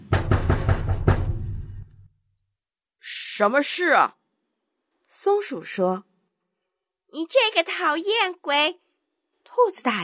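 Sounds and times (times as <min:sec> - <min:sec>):
hard knocking on a wooden door: 0:00.0 - 0:01.9
speech: 0:03.4 - 0:04.2, 0:05.2 - 0:06.1, 0:07.1 - 0:08.8, 0:09.5 - 0:10.0.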